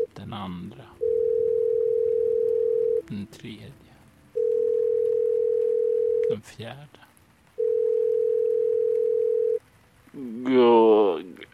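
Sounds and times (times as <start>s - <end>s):
speech: 0.2s - 1.1s, 3.1s - 3.9s, 6.3s - 7.1s, 10.1s - 11.5s
steady loud telephone ringback tone: 1.0s - 3.1s, 4.4s - 6.3s, 7.6s - 9.6s.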